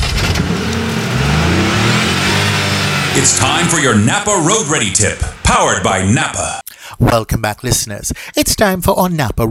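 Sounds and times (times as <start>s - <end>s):
car engine revving: 0.0s - 6.6s
speech: 3.2s - 9.4s.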